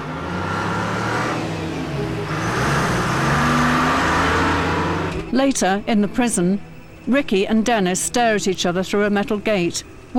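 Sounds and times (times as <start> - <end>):
prison truck engine drone: 0.0 - 8.7
road noise from a truck driving: 0.0 - 10.1
speech: 5.4 - 10.1.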